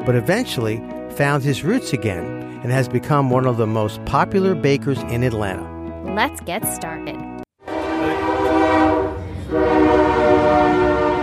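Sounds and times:
speech: 0.0s - 7.3s
passing train horn blaring: 7.6s - 11.2s.

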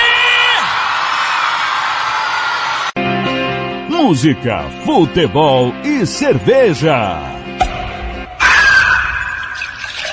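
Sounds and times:
crowd shouting and cheering with whoops: 0.0s - 3.0s, 8.0s - 10.0s
speech: 4.1s - 7.6s.

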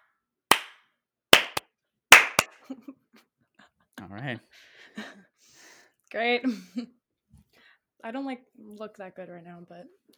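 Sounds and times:
hand claps to sync audio and video: 0.5s - 0.8s, 1.4s - 2.6s
speech: 2.7s - 3.2s, 4.0s - 5.3s, 6.1s - 7.0s, 8.0s - 10.1s.

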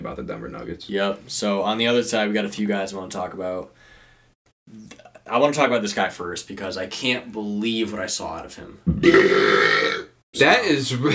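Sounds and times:
speech: 0.0s - 3.9s, 4.7s - 9.8s, 10.4s - 11.1s
man's deep loud drawn-out belch: 8.9s - 10.2s.

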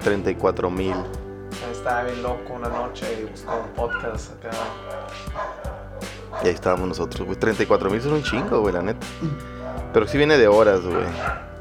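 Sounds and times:
speech: 0.0s - 1.2s, 1.8s - 11.5s
dogs barking: 0.8s - 1.2s, 2.7s - 4.1s, 4.7s - 6.9s, 9.5s - 11.5s.

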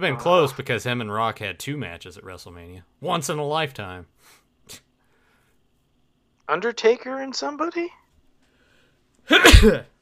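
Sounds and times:
speech: 0.0s - 4.8s, 6.5s - 8.0s, 9.3s - 9.9s
single loud sneeze: 9.3s - 9.9s.

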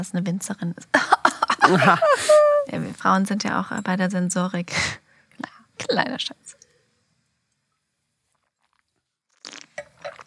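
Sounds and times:
speech: 0.0s - 6.5s
laughter: 1.2s - 2.6s
wine slurped through the lips with air while tasting: 8.4s - 10.2s.

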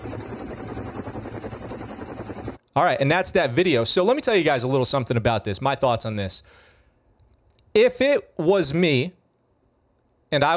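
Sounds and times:
Marine Corps 60-series helicopter engine roar near a ship's flight deck: 0.0s - 2.6s
speech: 2.8s - 6.7s, 7.7s - 9.2s, 10.3s - 10.5s.

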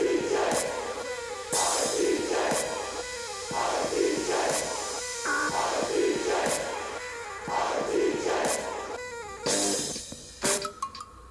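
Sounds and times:
crowd cheering and roaring: 0.0s - 9.0s
sharp beat-like hits: 1.5s - 10.8s.

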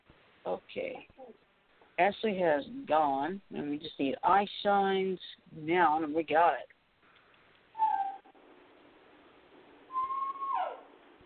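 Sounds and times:
speech: 0.4s - 6.7s
dog whining: 7.8s - 8.4s, 9.9s - 11.0s.

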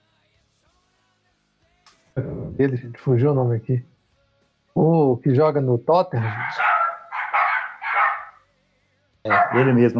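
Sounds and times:
speech: 2.2s - 3.9s, 4.8s - 6.7s, 9.2s - 9.9s
dogs barking: 6.2s - 8.4s, 9.3s - 9.9s.

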